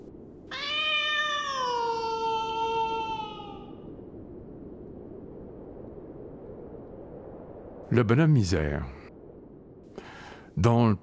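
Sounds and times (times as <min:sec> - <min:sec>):
female cat giving a long drawn-out meow: 0:00.5 - 0:03.8
speech: 0:07.9 - 0:09.0, 0:10.6 - 0:11.0.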